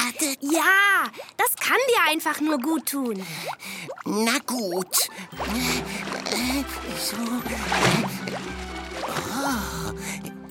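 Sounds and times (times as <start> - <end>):
warm spring water bubbling and splashing: 0.0 - 10.5
speech: 0.4 - 8.7.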